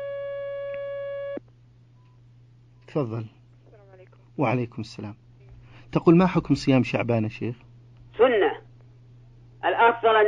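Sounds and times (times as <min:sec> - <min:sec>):
telephone line tone as a call comes in: 0:00.0 - 0:01.4
speech: 0:02.9 - 0:03.4, 0:04.4 - 0:05.2, 0:05.9 - 0:08.3.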